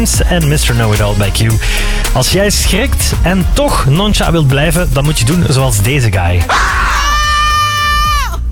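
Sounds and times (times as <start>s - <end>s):
man belting with long sustained high notes: 0.0s - 6.6s
speech: 0.0s - 7.0s
man letting out a loud strained scream: 6.4s - 8.4s.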